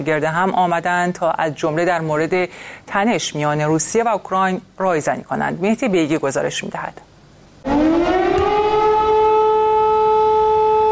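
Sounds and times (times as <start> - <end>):
speech: 0.0 - 7.1
air raid warning siren wailing with layered harmonics: 7.6 - 10.9.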